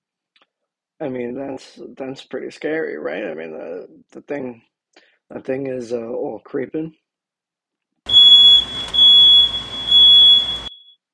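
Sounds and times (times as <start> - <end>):
speech: 1.0 - 4.7, 5.3 - 7.0
loud shrill electronic alarm beeping: 8.1 - 11.0.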